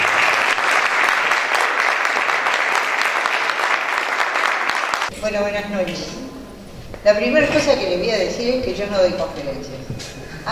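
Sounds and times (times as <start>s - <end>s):
audience applause at an evening talk: 0.0s - 5.1s
speech: 5.2s - 6.4s, 7.0s - 10.4s.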